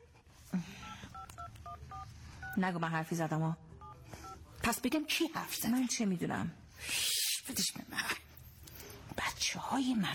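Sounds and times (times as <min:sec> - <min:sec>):
speech: 0:00.5 - 0:00.8, 0:02.6 - 0:03.6, 0:04.7 - 0:08.2, 0:09.5 - 0:10.1
touch-tone beeps from a telephone number being dialed: 0:00.8 - 0:02.6, 0:03.8 - 0:04.4.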